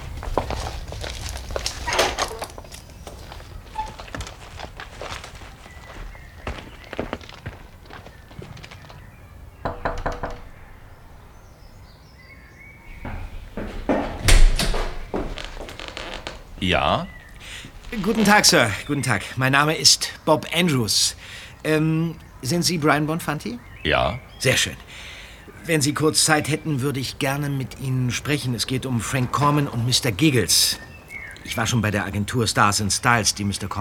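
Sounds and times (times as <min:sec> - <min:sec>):
rustle and scrape of a mouldy wooden garden gate: 0:00.0 - 0:09.1, 0:15.2 - 0:19.1
footsteps crunching at a walking pace: 0:00.0 - 0:09.8, 0:12.9 - 0:19.2
knuckles knocking on a wooden door: 0:09.6 - 0:10.6
speech: 0:16.7 - 0:17.1, 0:18.0 - 0:33.8.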